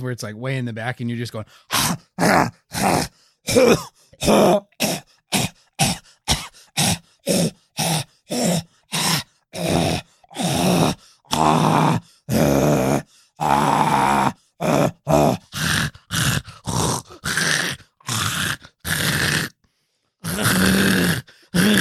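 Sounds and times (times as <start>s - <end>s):
speech: 0.0s - 5.0s
voice imitating a hacking cough from popcorn in the throat: 1.7s - 7.5s
groaning and grunting: 1.7s - 19.6s, 20.2s - 21.7s.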